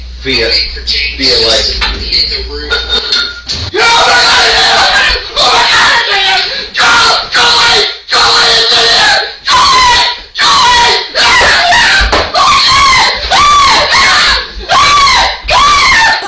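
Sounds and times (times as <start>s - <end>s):
speech: 0.2s - 4.4s
man screaming in fright at a squirrel: 3.7s - 16.2s.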